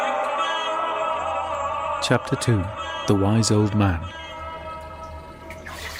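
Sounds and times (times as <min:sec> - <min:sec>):
steady low hum: 0:00.2 - 0:05.9
speech: 0:02.1 - 0:04.2
water splashing as a person splashes water on his face at a round pool: 0:05.1 - 0:05.9.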